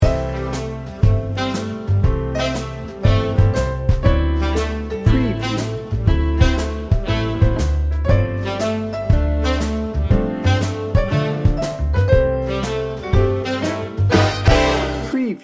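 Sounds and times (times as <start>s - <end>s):
big band swing music: 0.0s - 15.4s.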